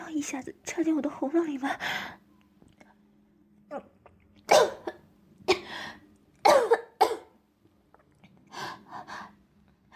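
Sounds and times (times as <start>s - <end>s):
speech: 0.2s - 2.2s
person coughing after choking on water: 6.4s - 7.3s.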